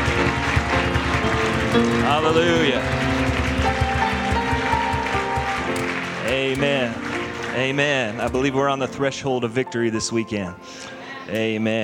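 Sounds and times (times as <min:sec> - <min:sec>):
crowd clapping in praise: 0:00.0 - 0:09.0
sustained music: 0:00.0 - 0:11.8
speech: 0:01.8 - 0:03.2, 0:06.3 - 0:11.8.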